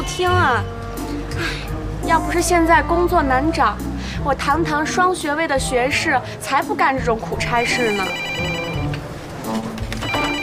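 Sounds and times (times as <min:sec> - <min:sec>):
speech: 0:00.2 - 0:08.3
telephone ringing with warbling electronic tones: 0:07.6 - 0:09.0, 0:10.0 - 0:10.4.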